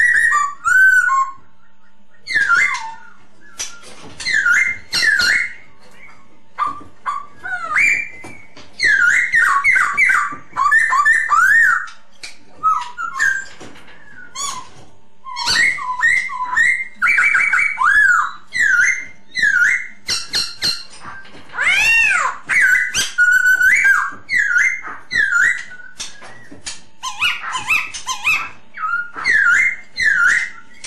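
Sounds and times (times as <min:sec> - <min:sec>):
masked laughingthrush whistled lure song: 0:00.0 - 0:30.8.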